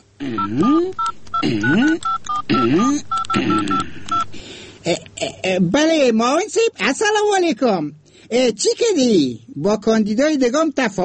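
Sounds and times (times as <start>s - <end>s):
speech: 0.2s - 4.0s, 4.9s - 11.0s
touch-tone telephone keypad dialing for a call: 0.4s - 4.3s.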